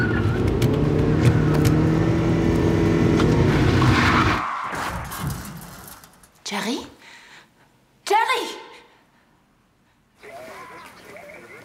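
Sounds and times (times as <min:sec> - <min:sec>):
car with failed brakes speeding with engine roaring: 0:00.0 - 0:06.3.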